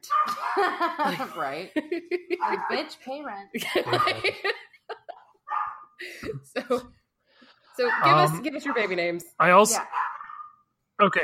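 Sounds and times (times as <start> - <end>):
dogs barking with sharp yips and whiny barks: 0.0 - 1.0, 2.4 - 3.0, 3.9 - 4.5, 5.4 - 6.0, 7.8 - 10.7
speech: 0.0 - 4.7, 6.0 - 7.0, 7.8 - 10.1, 11.0 - 11.2
laughter: 0.3 - 3.0, 3.6 - 5.4.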